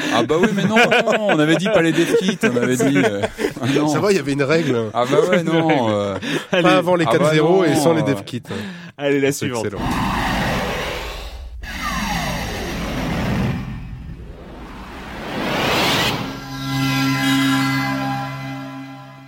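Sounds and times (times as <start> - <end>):
laughter: 0.0 - 8.7
speech: 0.1 - 10.2
loud electronic whooshes from a console: 9.8 - 18.1
rising and falling synth sweeps from a console: 9.8 - 19.2
steady sustained chord of tones from a console: 13.8 - 19.2.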